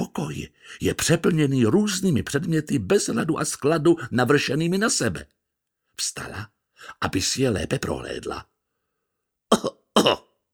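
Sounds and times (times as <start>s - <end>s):
speech: 0.2s - 5.4s, 6.0s - 8.5s, 9.6s - 10.3s
person clearing throat in a room: 9.5s - 10.4s.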